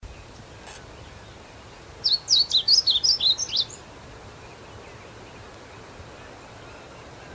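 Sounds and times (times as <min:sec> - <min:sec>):
Blue seedeater Amaurospiza concolor song: 0:00.0 - 0:07.3.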